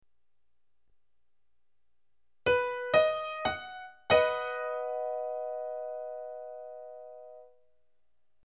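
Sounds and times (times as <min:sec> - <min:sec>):
triad chord: 0:02.5 - 0:07.5.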